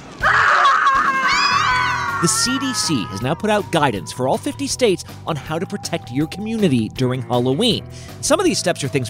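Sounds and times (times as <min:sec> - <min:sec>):
high-pitched scream: 0:00.2 - 0:04.7
speech: 0:02.2 - 0:09.0.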